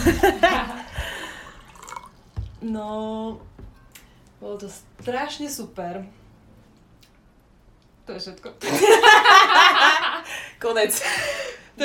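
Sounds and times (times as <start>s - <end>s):
speech: 0.1s - 0.4s, 2.6s - 3.6s, 4.4s - 6.2s, 8.1s - 10.0s, 10.6s - 11.8s
water pouring into a glass: 1.4s - 2.6s.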